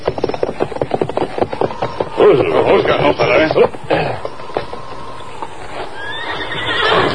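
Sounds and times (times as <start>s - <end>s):
horse hooves clopping: 0.0s - 7.1s
horse whinnying: 1.6s - 7.1s.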